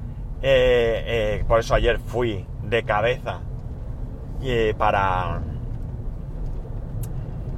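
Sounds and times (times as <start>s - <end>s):
Opel Mokka X crossover car driving: 0.0s - 7.5s
speech: 0.4s - 3.5s, 4.4s - 5.5s.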